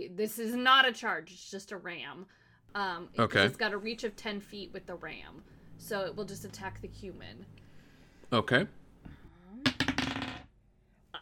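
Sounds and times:
speech: 0.2 - 7.6, 8.3 - 8.8
dice rolling on a hard tabletop during a tabletop game: 9.7 - 10.5.

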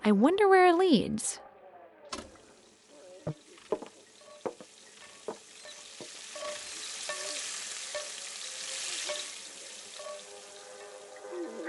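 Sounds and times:
speech: 0.1 - 1.4
frying sizzle in a busy kitchen: 2.6 - 11.3
sharp clanks of utensils and pans: 3.3 - 11.0.

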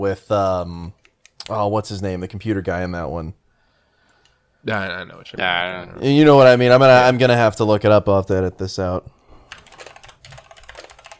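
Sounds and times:
speech: 0.0 - 3.4, 4.6 - 9.2
computer keyboard typing: 9.4 - 11.1.

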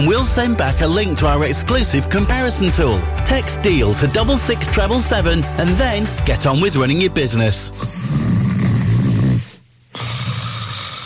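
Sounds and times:
speech: 0.0 - 8.2
person breathing raspily while sleeping: 7.6 - 11.0
person snoring loudly while sleeping at night: 7.6 - 11.0.

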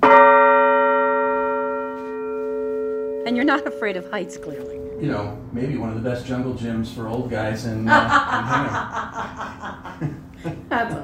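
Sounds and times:
single large tower bell struck once: 0.0 - 6.9
speech: 3.3 - 11.0
laughter: 7.6 - 11.0.

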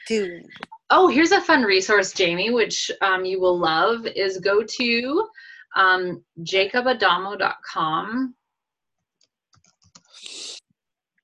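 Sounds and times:
speech: 0.1 - 8.4
typing on a computer keyboard: 9.0 - 10.2.

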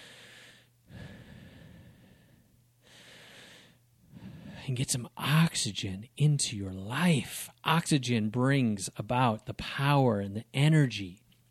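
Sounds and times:
deep breathing: 0.0 - 4.7
speech: 4.7 - 11.2.

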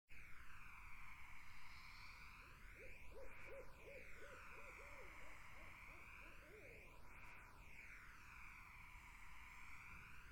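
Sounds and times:
buzzing insect chorus in a summer wetland: 0.3 - 10.3
barred owl hooting in a summer wetland: 2.8 - 7.3.

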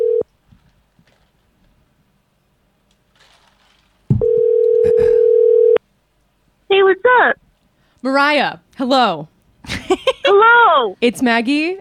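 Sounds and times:
outgoing phone call ringing tone: 0.0 - 0.2, 4.2 - 5.8
speech: 8.0 - 9.3, 9.9 - 11.7.

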